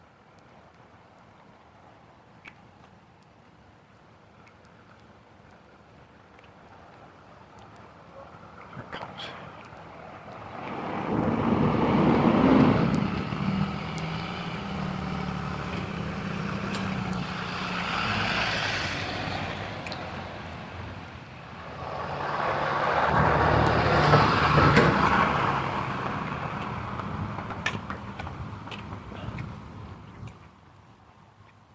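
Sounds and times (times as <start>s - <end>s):
another vehicle sweeping past: 8.2s - 30.1s
school bus rumbling past on a street: 9.2s - 30.1s.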